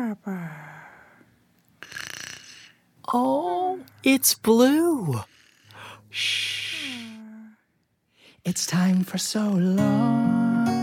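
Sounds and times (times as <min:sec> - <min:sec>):
speech: 0:00.0 - 0:00.7, 0:03.1 - 0:05.3, 0:06.1 - 0:06.6, 0:08.4 - 0:10.4
single raspy snore: 0:01.8 - 0:02.8, 0:05.2 - 0:05.9.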